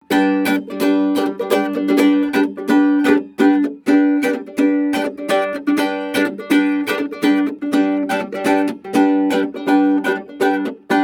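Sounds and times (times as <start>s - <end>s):
holophonic musical riff: 0.0s - 11.0s.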